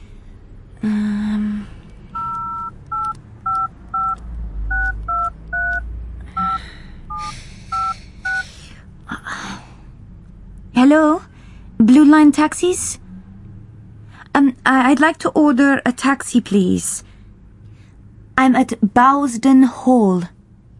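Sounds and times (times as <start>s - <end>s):
speech: 0.8s - 1.5s, 10.9s - 13.0s, 14.4s - 17.1s, 18.4s - 20.4s
short phone tone: 2.1s - 5.8s, 6.4s - 8.4s.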